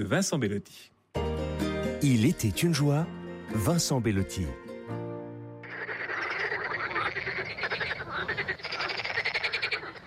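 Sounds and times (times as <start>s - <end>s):
speech: 0.0s - 1.4s, 2.0s - 4.6s
dense chorus of frogs croaking: 5.6s - 10.0s.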